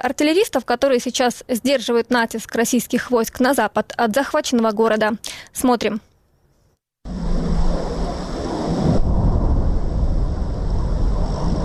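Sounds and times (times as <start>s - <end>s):
speech: 0.0s - 6.1s
jet-like roar of an incoming aerial bomb at artillery positions: 7.1s - 11.6s.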